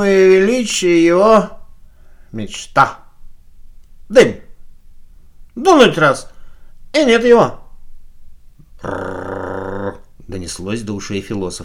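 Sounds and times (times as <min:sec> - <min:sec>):
speech: 0:00.0 - 0:01.6, 0:02.3 - 0:03.0, 0:04.1 - 0:04.4, 0:05.6 - 0:06.3, 0:06.9 - 0:07.6, 0:08.8 - 0:09.3, 0:10.3 - 0:11.6
huge black steppe sheepdog growling: 0:08.7 - 0:10.1.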